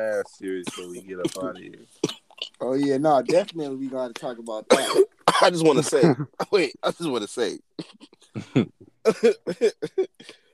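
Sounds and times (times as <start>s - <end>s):
speech: 0.0s - 10.4s
person coughing: 0.6s - 2.2s, 4.7s - 7.2s, 7.8s - 10.4s.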